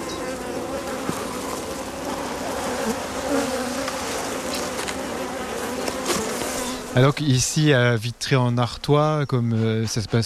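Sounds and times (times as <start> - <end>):
honeybees buzzing on a hive frame: 0.0 - 8.0
speech: 7.0 - 10.2.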